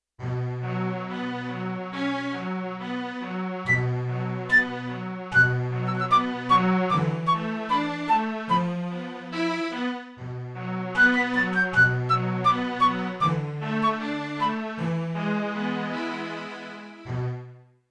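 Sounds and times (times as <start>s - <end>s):
strings on a Yamaha TX16W: 0.2s - 17.6s
flute on a Yamaha TX16W: 3.7s - 9.1s, 10.9s - 15.0s.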